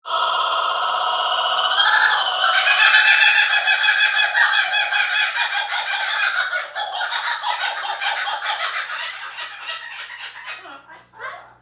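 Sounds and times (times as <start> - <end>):
kookaburra calling: 0.0 - 11.6.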